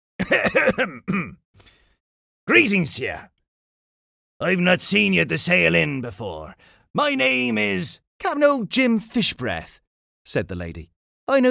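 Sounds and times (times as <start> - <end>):
pirate captain coughing theatrically at a table in an inn: 0.2 - 1.4
speech: 0.2 - 1.7, 2.5 - 3.3, 4.4 - 11.5.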